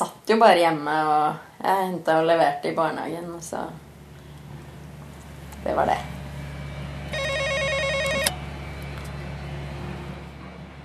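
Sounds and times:
speech: 0.0 - 3.8, 5.6 - 6.1
electronic doorbell ringing at a woman's home: 7.1 - 8.4.

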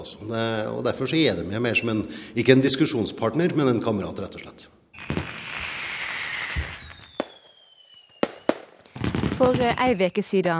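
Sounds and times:
speech: 0.0 - 5.1, 9.4 - 10.5
whistling rockets rising: 4.9 - 9.9
fireworks cracks and booms: 5.0 - 10.0.

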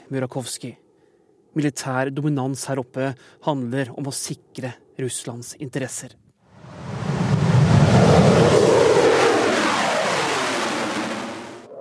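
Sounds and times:
speech: 0.1 - 0.8, 1.5 - 6.2
MiG-35 fighter jet engine roaring: 6.6 - 11.7.

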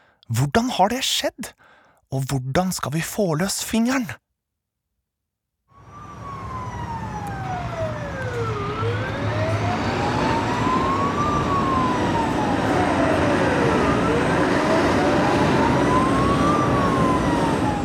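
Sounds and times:
speech: 0.3 - 4.2
fire engine siren wailing: 5.7 - 17.8.

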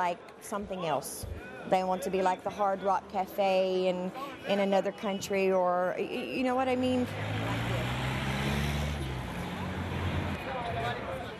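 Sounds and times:
speech: 0.0 - 7.5
street traffic passing cafés in downtown Cairo: 5.2 - 11.3.

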